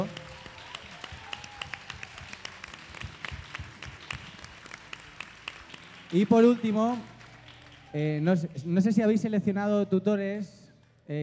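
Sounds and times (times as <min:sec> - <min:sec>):
audience applause at a women-in-sport event: 0:00.0 - 0:08.5
speech: 0:06.1 - 0:07.1, 0:07.9 - 0:11.2.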